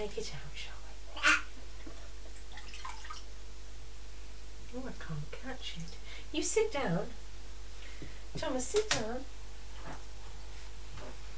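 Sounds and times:
speech: 0:00.0 - 0:01.3, 0:04.7 - 0:07.2, 0:08.0 - 0:10.1
water dripping in a bath: 0:01.8 - 0:03.3
water splashing lightly in a bath: 0:02.3 - 0:03.3.

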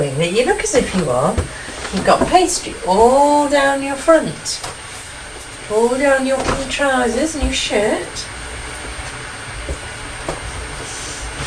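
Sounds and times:
speech: 0:00.0 - 0:04.8, 0:05.7 - 0:08.3
electric kettle heating up: 0:00.0 - 0:11.4.

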